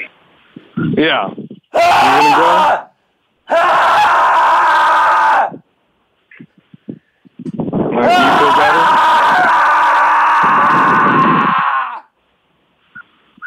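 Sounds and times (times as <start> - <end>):
speech: 1.0 - 2.9, 3.5 - 3.9, 8.0 - 8.7
person screaming loudly: 1.7 - 2.9, 3.5 - 5.6, 7.9 - 12.1.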